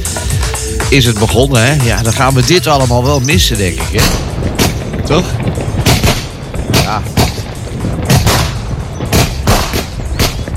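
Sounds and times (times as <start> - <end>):
continuous rumbling crackling background: 0.0 - 10.5
speech: 0.9 - 5.5
fireworks exploding: 3.4 - 10.5.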